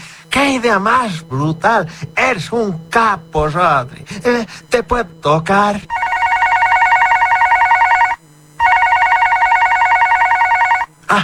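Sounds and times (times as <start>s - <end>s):
speech: 0.4s - 6.0s
telephone ringing with an electronic trill: 5.9s - 10.9s.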